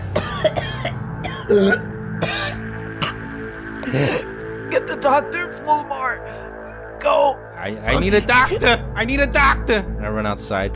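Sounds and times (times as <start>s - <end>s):
person imitating a woman violently coughing blood: 0.1s - 4.3s
speech: 1.5s - 1.9s, 5.1s - 10.7s.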